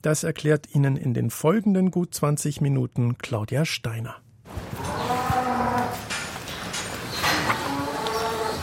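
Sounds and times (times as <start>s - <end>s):
speech: 0.0s - 4.8s
cows mooing inside an echoing barn: 4.8s - 6.3s, 7.0s - 8.6s.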